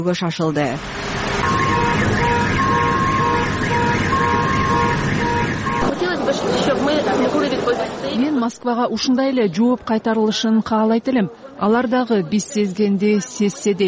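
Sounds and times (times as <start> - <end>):
speech: 0.0 - 2.2, 6.3 - 13.8
air raid siren wailing over Kyiv in the morning: 0.8 - 8.0
murmur of voices: 5.8 - 13.8.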